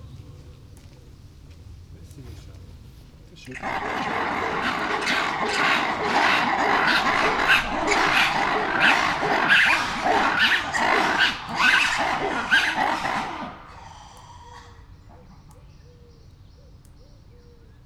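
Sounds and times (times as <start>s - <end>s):
red-bellied piranha at Veszprém Zoo: 3.5s - 15.2s.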